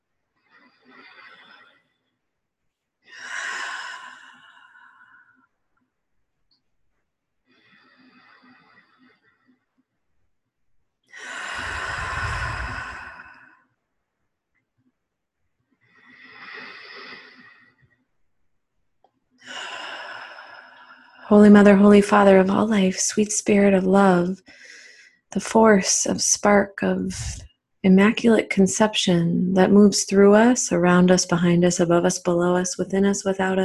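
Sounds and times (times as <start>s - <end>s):
deep breaths in through the nose and out through the mouth: 0.4s - 2.2s, 3.0s - 5.5s, 7.4s - 9.7s, 11.1s - 13.8s, 15.8s - 18.0s, 19.4s - 21.4s, 24.4s - 25.3s
speech: 21.3s - 24.7s, 25.3s - 33.6s.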